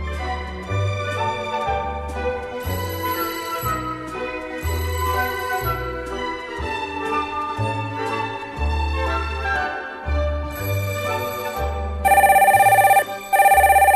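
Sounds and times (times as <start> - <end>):
light music with a bouncing bass line: 0.0 - 13.9
telephone ringing in bright buzzy bursts as a call comes in: 12.1 - 13.9.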